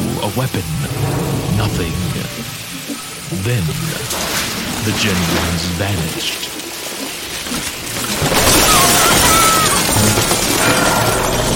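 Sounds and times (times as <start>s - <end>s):
speech: 0.2s - 2.7s, 3.3s - 6.6s
drywall apartment ceiling collapsing: 0.3s - 11.5s
drywall debris clattering: 0.6s - 11.5s.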